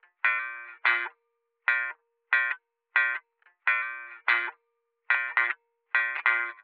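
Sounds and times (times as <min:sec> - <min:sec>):
thin chill pop rock electric guitar playing in B flat major: 0:00.2 - 0:01.1, 0:01.7 - 0:04.5, 0:05.1 - 0:06.6.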